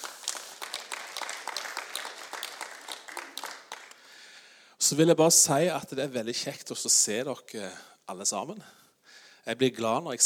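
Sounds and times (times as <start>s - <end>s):
room full of people applauding: 0.0s - 4.1s
speech: 4.9s - 8.8s, 9.4s - 10.2s.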